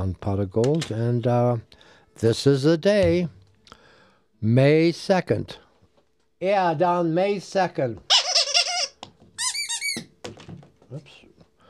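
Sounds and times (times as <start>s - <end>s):
speech: 0.0s - 3.4s, 4.4s - 5.6s, 6.4s - 8.2s, 10.9s - 11.2s
squeaky toy squeaking: 8.1s - 10.2s.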